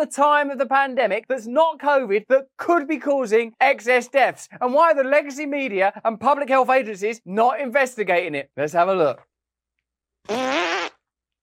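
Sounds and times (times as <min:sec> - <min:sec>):
speech: 0:00.0 - 0:09.3, 0:10.2 - 0:11.0
buzzy fart sound effect: 0:10.3 - 0:11.0.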